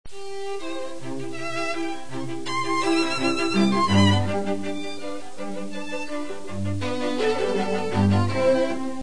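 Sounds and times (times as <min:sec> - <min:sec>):
classical music trio in major key: 0:00.1 - 0:09.0.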